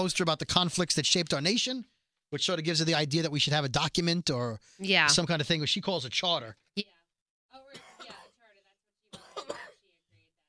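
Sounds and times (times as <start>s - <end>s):
speech: 0.0s - 7.0s
person with a lingering cough coughing: 7.7s - 8.4s, 9.1s - 9.8s.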